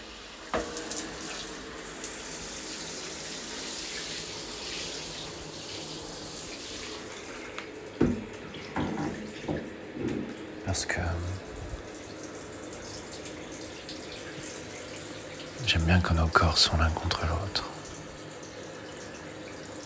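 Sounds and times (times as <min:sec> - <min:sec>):
water running from a shower: 0:00.0 - 0:19.8
brief knocks and splashes: 0:08.0 - 0:10.3
speech: 0:10.8 - 0:11.4, 0:15.7 - 0:17.7.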